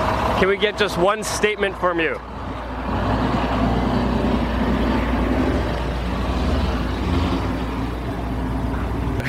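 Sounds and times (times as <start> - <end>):
car engine rumbling: 0.0 - 9.2
speech: 0.4 - 2.3.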